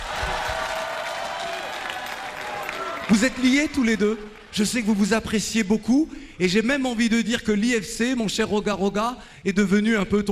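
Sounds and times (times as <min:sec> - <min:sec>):
audience applause at a cultural institute venue in Congo: 0:00.0 - 0:05.1
speech: 0:03.1 - 0:10.2.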